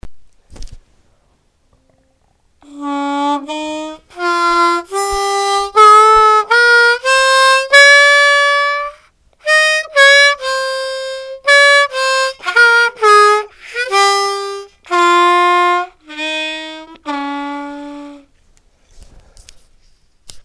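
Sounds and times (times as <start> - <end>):
harmonica playing in maqam Sikah: 2.6 - 18.3.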